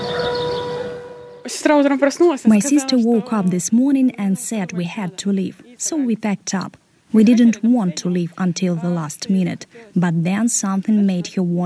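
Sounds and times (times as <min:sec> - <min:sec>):
town air raid sirens wailing: 0:00.0 - 0:01.7
speech: 0:01.6 - 0:11.6.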